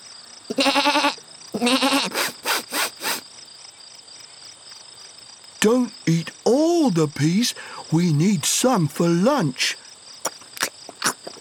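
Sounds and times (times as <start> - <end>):
speech: 0.5 - 2.2, 5.6 - 9.8
goat bleating: 0.5 - 2.3.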